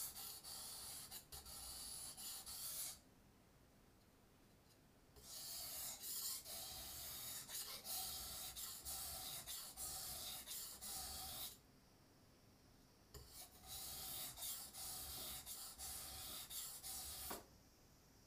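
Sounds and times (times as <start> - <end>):
blade being sharpened on a whetstone: 0.0 - 3.0, 5.2 - 11.6, 13.2 - 17.4.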